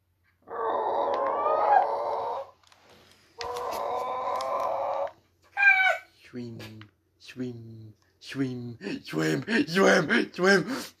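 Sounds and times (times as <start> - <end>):
person imitating a chicken with squawking calls: 0.4 - 2.5, 3.4 - 6.0
speech: 6.4 - 10.9.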